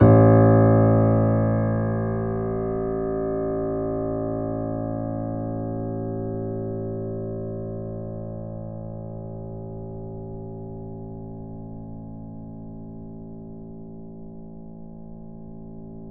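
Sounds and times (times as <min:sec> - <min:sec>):
grand piano A0 note played mezzo-forte: 0:00.0 - 0:06.6.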